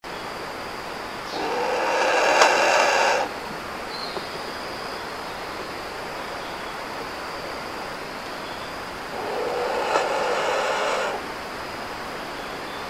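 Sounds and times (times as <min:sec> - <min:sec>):
kagu calling: 0:01.2 - 0:04.7, 0:08.4 - 0:11.4.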